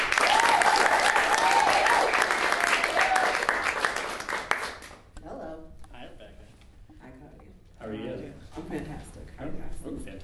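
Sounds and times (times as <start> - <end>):
faint cheering: 0.0 - 3.6
audience applause for a comedian: 0.0 - 5.0.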